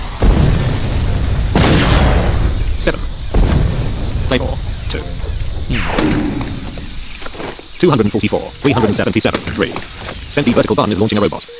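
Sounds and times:
rocket launcher explosions in a video game: 0.0s - 8.6s
speech: 2.8s - 3.2s, 4.3s - 6.5s, 7.8s - 11.5s.

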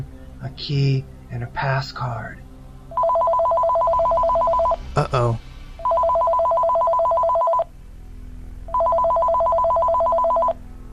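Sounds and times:
speech: 0.0s - 2.5s, 5.0s - 5.5s
telephone ringing with electronic trill: 2.9s - 4.8s, 5.8s - 7.7s, 8.7s - 10.6s.

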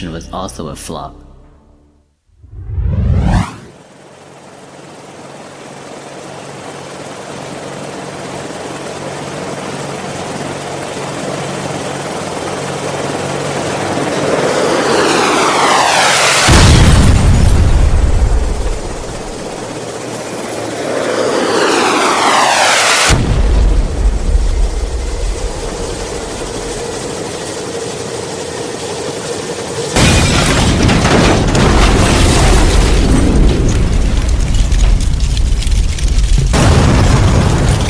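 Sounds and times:
speech: 0.0s - 1.3s
explosions as the helicopter goes down: 2.4s - 3.7s, 15.5s - 19.6s, 21.6s - 26.0s, 30.0s - 37.8s
helicopter roar with whooshing passes overhead: 2.4s - 34.8s.

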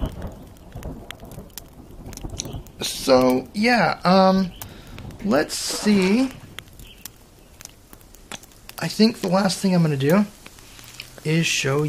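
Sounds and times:
video game rolling thunder: 0.0s - 6.9s
video game rainfall hissing: 0.0s - 11.8s
speech: 2.8s - 4.6s, 5.2s - 6.4s, 8.8s - 10.4s, 11.2s - 11.8s.

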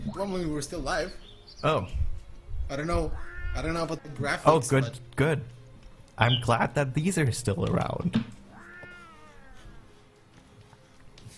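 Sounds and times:
speech: 0.2s - 2.0s, 2.7s - 5.6s, 6.2s - 8.3s
cat meowing: 2.9s - 4.5s, 8.5s - 9.9s
soft rustling: 8.6s - 11.3s.

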